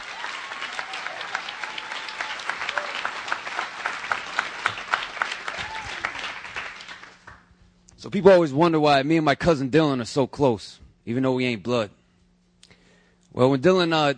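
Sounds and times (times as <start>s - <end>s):
faint whistles or cheers from the crowd: 0.0s - 6.6s
audience applause: 0.0s - 7.5s
speech: 8.0s - 12.0s, 13.4s - 14.1s.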